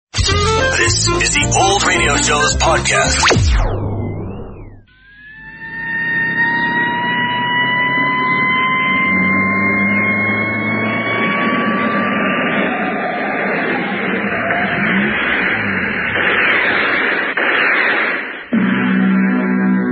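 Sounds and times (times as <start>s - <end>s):
high whine: 0.2s - 19.9s
speech: 0.8s - 4.1s
police squad car engines roaring as cars speed along: 5.5s - 17.4s.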